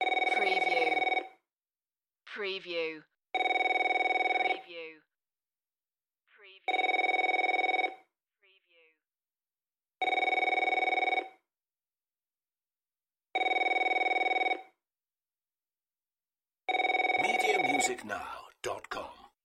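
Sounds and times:
office telephone ringing: 0.0s - 1.4s, 3.4s - 4.6s, 6.7s - 8.1s, 10.0s - 11.4s, 13.4s - 14.8s, 16.7s - 18.2s.

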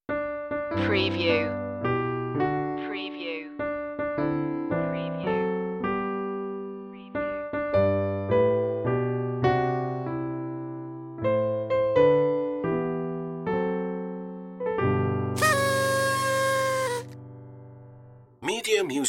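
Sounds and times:
easy party piano melody: 0.1s - 18.3s
party horn toot: 15.4s - 17.2s.

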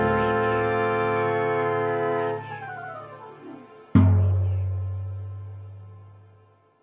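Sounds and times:
cartoon superhero fail sound: 0.2s - 4.5s.

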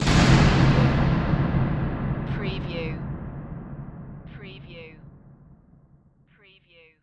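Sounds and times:
drum hit: 0.0s - 6.2s.

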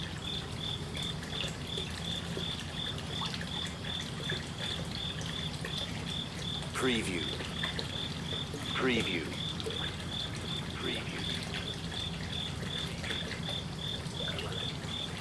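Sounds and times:
continuous trickling water in Kyoto Japan: 0.0s - 15.1s
cricket chirping steadily at night in Kyoto Japan: 0.0s - 15.1s
speech: 6.8s - 7.5s, 8.8s - 9.4s.

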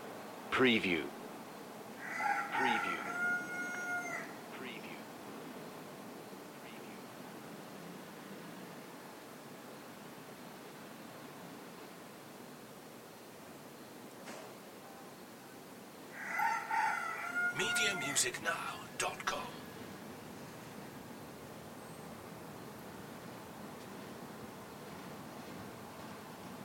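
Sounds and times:
steady background hiss: 0.0s - 26.6s
speech: 0.6s - 1.2s, 2.6s - 3.2s, 18.2s - 19.2s
rooster crowing in the morning: 2.0s - 4.4s, 16.1s - 18.8s.

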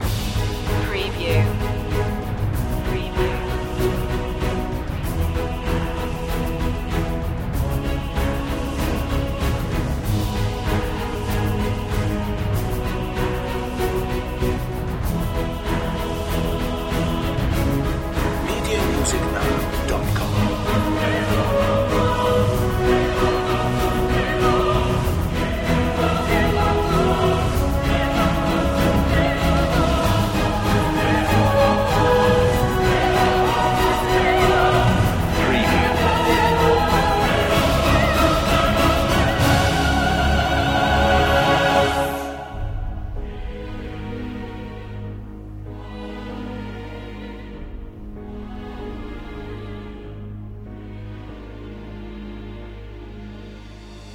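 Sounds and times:
music mix: 0.0s - 54.1s.

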